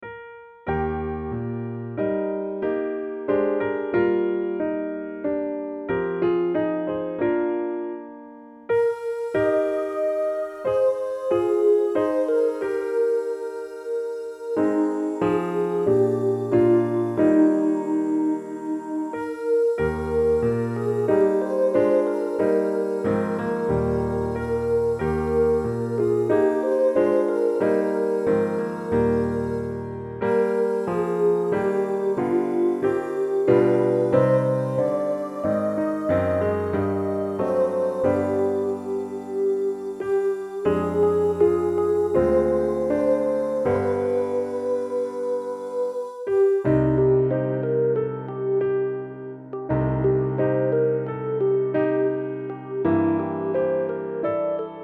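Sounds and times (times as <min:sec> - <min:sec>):
piano study in E-flat: 0:00.0 - 0:54.8.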